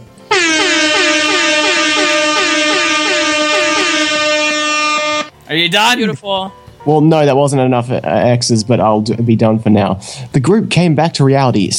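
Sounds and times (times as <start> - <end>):
air horn blaring with a warbling rhythm: 0.3 - 5.3
speech: 5.6 - 11.7.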